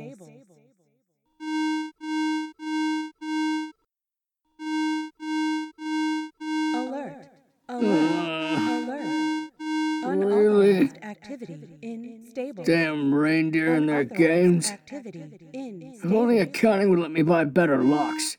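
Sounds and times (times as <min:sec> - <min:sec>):
security alarm electronic beeps: 0:01.4 - 0:03.7, 0:04.6 - 0:06.9, 0:07.8 - 0:10.9, 0:17.7 - 0:18.3
voice announcing unauthorized activity in the stables: 0:06.7 - 0:09.2, 0:10.0 - 0:11.1, 0:12.5 - 0:14.9, 0:16.0 - 0:18.3
speech: 0:14.0 - 0:18.3.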